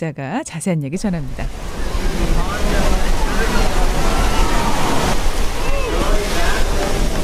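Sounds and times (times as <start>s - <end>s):
speech: 0.0s - 3.8s
Pacific ocean surf breaking at Huntington Beach California: 1.0s - 7.2s
faint indistinct voices murmuring: 1.5s - 7.2s.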